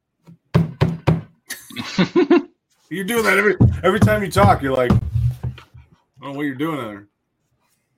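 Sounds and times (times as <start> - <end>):
laughter: 1.5 - 2.5
speech: 1.9 - 5.1, 6.2 - 7.1
soft knocks: 3.5 - 5.9
hand banging on a desk: 3.6 - 5.8.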